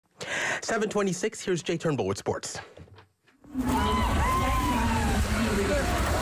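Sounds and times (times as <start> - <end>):
speech: 0.6 - 2.9
crowd hubbub at a dragon boat race: 3.5 - 6.2
people shouting at a dragon boat race: 3.5 - 6.2
water splashing and sloshing in a dragon boat race: 3.5 - 6.2.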